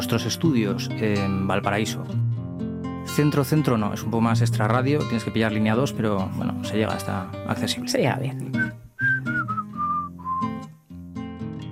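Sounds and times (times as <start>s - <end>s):
speech: 0.1s - 2.2s, 3.2s - 8.8s
whistled tune: 8.6s - 10.8s.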